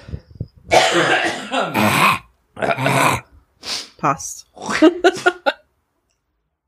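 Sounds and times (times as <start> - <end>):
person clearing throat roughly: 0.7 - 3.2
speech: 4.0 - 5.3
laughter: 4.7 - 5.6.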